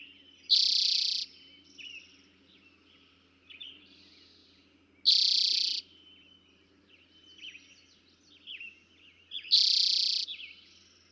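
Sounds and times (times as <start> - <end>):
soft chirps in the background: 0.0 - 11.1
Eastern towhee loud buzzy trill song: 0.5 - 1.3, 5.1 - 5.8, 9.5 - 10.2.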